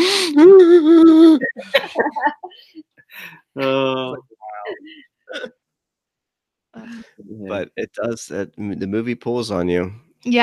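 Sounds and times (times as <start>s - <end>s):
voice imitating people sobbing: 0.0s - 2.5s, 3.6s - 5.5s, 6.8s - 9.2s
laughter: 1.0s - 5.0s, 7.2s - 9.4s
speech: 1.6s - 2.4s, 8.0s - 10.4s.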